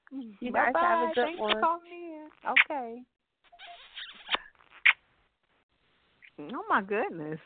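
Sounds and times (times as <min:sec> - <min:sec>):
speech: 0:00.1 - 0:03.2, 0:06.4 - 0:07.4
squeaky smacking kisses blown by a caller over the phone: 0:03.5 - 0:05.0.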